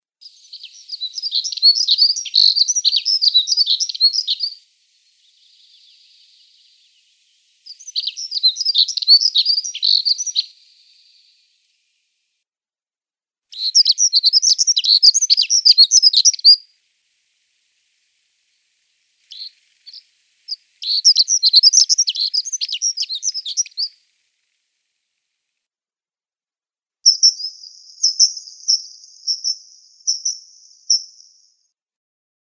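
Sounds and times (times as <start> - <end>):
Siberian accentor calling: 0.2 - 11.4, 13.5 - 16.7, 19.2 - 24.0.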